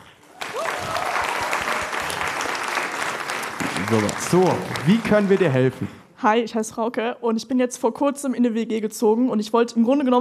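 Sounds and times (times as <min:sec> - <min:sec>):
audience applause: 0:00.2 - 0:06.0
speech: 0:03.9 - 0:10.1.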